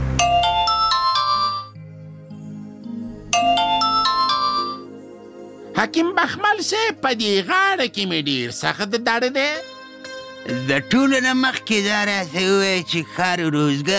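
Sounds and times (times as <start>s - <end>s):
mobile phone ringing with a bright chiming electronic melody: 0.2s - 1.8s, 3.3s - 4.9s
speech: 5.9s - 9.7s, 10.4s - 13.9s.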